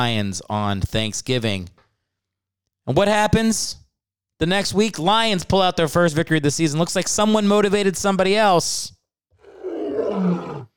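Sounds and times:
speech: 0.0s - 1.8s, 2.9s - 3.8s, 4.4s - 9.0s
lion roaring: 9.4s - 10.7s.

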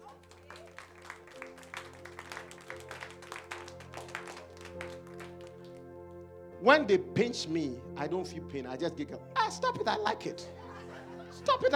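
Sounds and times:
audience clapping in rhythm: 0.0s - 5.9s
speech: 6.6s - 10.6s, 11.4s - 11.7s
laughter: 10.5s - 11.7s.

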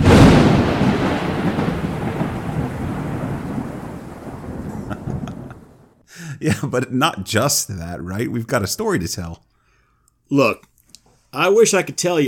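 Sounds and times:
loud thunderclap: 0.0s - 6.0s
steady rain: 0.0s - 6.0s
laughter: 4.7s - 6.8s
speech: 6.4s - 9.5s, 10.3s - 10.7s, 11.3s - 12.2s.

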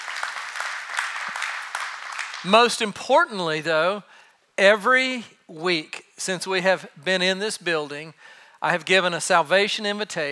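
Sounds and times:
church audience applauding: 0.0s - 2.6s
speech: 2.4s - 10.3s.

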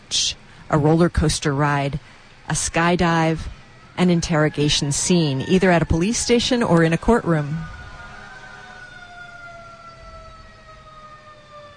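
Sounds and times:
speech: 0.7s - 7.8s
emergency vehicle sirens wailing: 2.5s - 11.7s.

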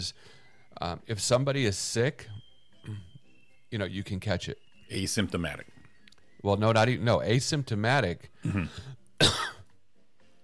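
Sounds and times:
speech: 0.0s - 3.1s, 3.7s - 5.7s, 6.4s - 9.5s
single sharp cough: 8.4s - 9.7s.

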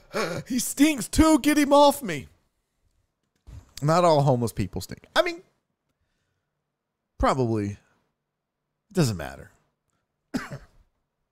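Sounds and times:
speech: 0.1s - 2.3s, 3.8s - 5.4s, 7.2s - 7.8s, 8.9s - 9.5s, 10.3s - 10.7s
person coughing with a throaty rasp: 10.3s - 10.9s.

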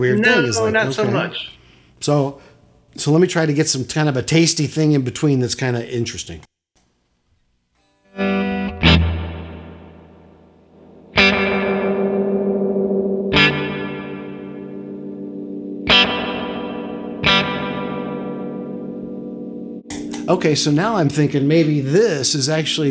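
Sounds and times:
speech: 0.0s - 6.5s, 20.3s - 22.8s
electric guitar chords played through a reverb pedal: 8.2s - 22.8s.

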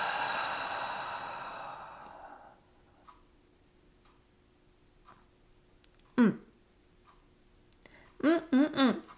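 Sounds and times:
long exhaled breath: 0.0s - 2.7s
clock ticking softly: 2.9s - 6.2s, 6.9s - 8.2s.

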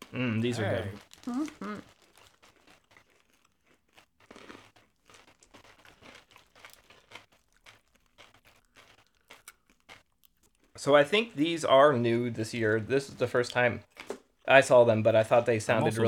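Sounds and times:
crunching pretzel-filled snacks into a microphone: 0.0s - 11.8s
speech: 0.1s - 2.0s, 10.8s - 13.9s, 14.5s - 16.0s.

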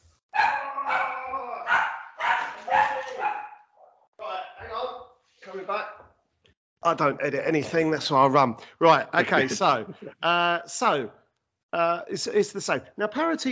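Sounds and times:
dog barking while waiting to be let out: 0.3s - 4.1s
speech: 6.8s - 13.5s
laughter: 9.0s - 10.4s.

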